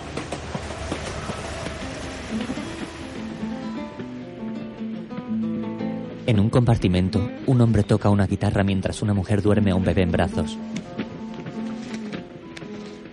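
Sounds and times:
train speeding along the rails: 0.0s - 5.3s
speech: 6.3s - 10.9s.

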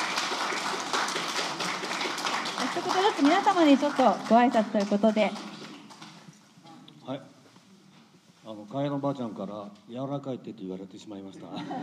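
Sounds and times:
room full of people applauding: 0.0s - 6.3s
speech: 2.8s - 5.5s, 7.1s - 7.3s, 8.5s - 11.8s
laughter: 11.4s - 11.8s.

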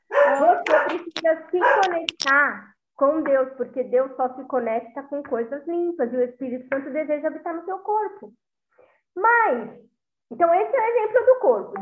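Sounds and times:
dog barking: 0.0s - 2.1s
speech: 0.9s - 8.5s, 9.2s - 11.8s.

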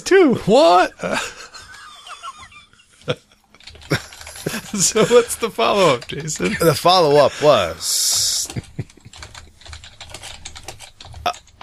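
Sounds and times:
speech: 0.0s - 1.4s, 3.1s - 3.3s, 4.7s - 8.9s
laughter: 0.7s - 9.5s
typing on a computer keyboard: 3.0s - 6.6s, 8.0s - 11.6s.

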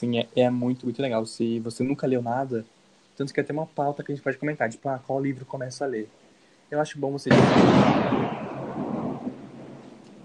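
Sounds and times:
speech: 0.0s - 8.4s
steady hiss of rain: 0.0s - 10.2s
thunder rumbling: 7.3s - 10.2s.

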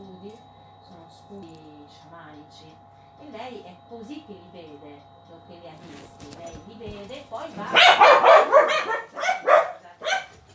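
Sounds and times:
speech: 1.3s - 1.5s, 2.2s - 9.0s
dog barking: 7.6s - 10.4s.

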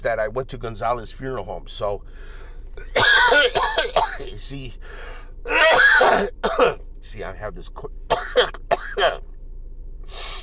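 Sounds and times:
speech: 0.0s - 9.3s
post-nasal drip cough: 2.8s - 4.3s, 5.5s - 6.8s, 8.1s - 9.2s.

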